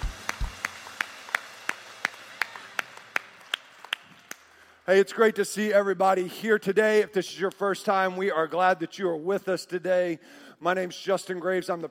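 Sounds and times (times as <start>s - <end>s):
audience clapping in unison in a roomy space: 0.0s - 4.8s
speech: 4.9s - 11.9s.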